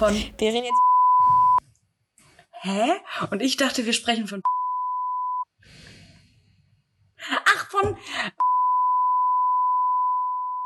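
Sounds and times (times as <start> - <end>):
speech: 0.0 - 1.4, 2.6 - 4.5
censor bleep tone covering a spoken name: 0.7 - 1.6, 4.4 - 5.4, 8.4 - 10.6.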